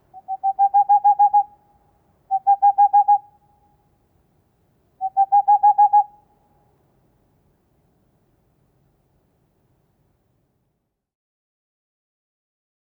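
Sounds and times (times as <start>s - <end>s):
male Tengmalm's owl hooting: 0.1s - 1.6s, 2.3s - 3.3s, 5.0s - 6.2s.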